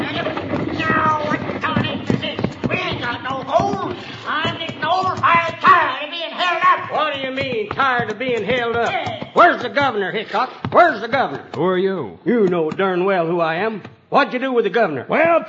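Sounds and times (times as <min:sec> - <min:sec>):
stagecoach coming to a halt: 0:00.0 - 0:11.4
horses snorting: 0:00.0 - 0:11.6
horses' hooves clopping as a stagecoach halts: 0:00.0 - 0:13.0
speech: 0:07.8 - 0:15.4.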